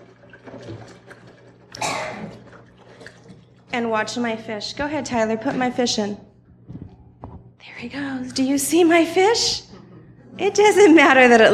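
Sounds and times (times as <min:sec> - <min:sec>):
water poured into a container: 0:00.0 - 0:03.7
low hum: 0:00.0 - 0:11.5
speech: 0:03.8 - 0:06.3, 0:07.8 - 0:09.6, 0:10.4 - 0:11.5.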